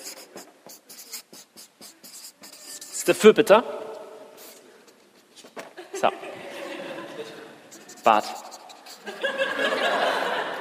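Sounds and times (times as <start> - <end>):
handwriting strokes writing a word: 0.0 - 3.4, 4.3 - 5.8, 7.7 - 10.0
speech: 3.1 - 3.8, 8.0 - 8.4
laughter: 5.8 - 7.6, 9.0 - 10.5.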